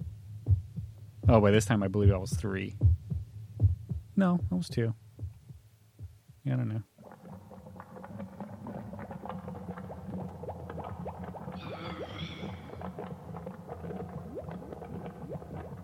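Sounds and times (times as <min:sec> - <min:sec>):
speech: 0:01.3 - 0:03.0, 0:04.2 - 0:05.0, 0:06.4 - 0:06.9
water bubbling and gurgling with low churning rumble: 0:07.0 - 0:15.8.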